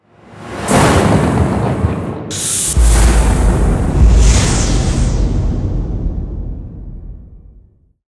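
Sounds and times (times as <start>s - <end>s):
big drum heartbeat: 1.2s - 7.6s.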